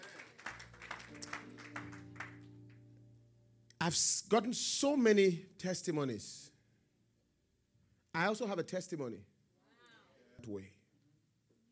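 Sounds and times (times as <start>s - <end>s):
audience clapping in a steady rhythm: 0.0s - 2.8s
speech: 3.8s - 6.4s, 8.2s - 9.3s, 10.4s - 10.8s.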